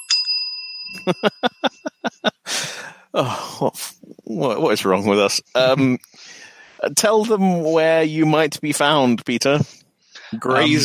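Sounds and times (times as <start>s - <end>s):
bell rung by two people: 0.0s - 2.3s
speech: 1.0s - 1.8s, 2.5s - 10.8s
laughter: 1.0s - 3.8s, 5.4s - 6.0s, 10.3s - 10.8s
loud breathy exhales like sighs: 2.4s - 3.5s, 6.1s - 6.8s.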